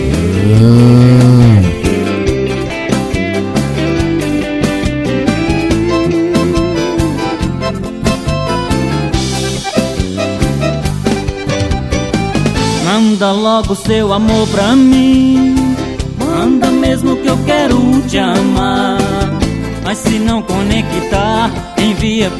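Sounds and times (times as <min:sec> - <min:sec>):
cow mooing: 0:00.0 - 0:01.9
upbeat accordion-driven dance music with percussion: 0:00.0 - 0:12.9
speech: 0:13.6 - 0:15.6, 0:16.5 - 0:19.3, 0:19.9 - 0:22.3.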